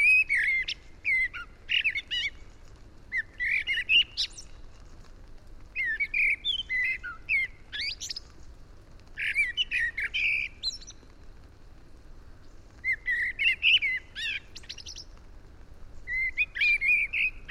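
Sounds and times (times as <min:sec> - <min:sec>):
Eurasian blackbird (Turdus merula) singing: 0:00.0 - 0:02.4, 0:03.1 - 0:04.5, 0:05.8 - 0:08.3, 0:09.2 - 0:11.0, 0:12.8 - 0:15.1, 0:16.0 - 0:17.4.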